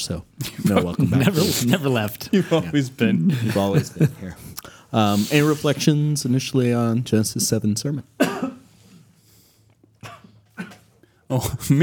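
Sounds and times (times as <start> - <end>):
speech: 0.0 - 8.6, 11.3 - 11.8
harsh coughs after inhaling saliva: 0.4 - 1.8, 8.2 - 8.8, 10.0 - 11.0
laughter: 0.4 - 5.6.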